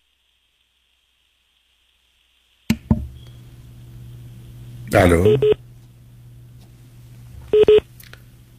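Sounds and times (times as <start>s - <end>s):
faint steady telephone line hum: 0.0s - 8.5s
speech: 4.9s - 5.6s
telephone line beep after dropped call: 5.2s - 5.6s, 7.5s - 7.8s
telephone line tone bursts after dropped call: 7.5s - 7.8s.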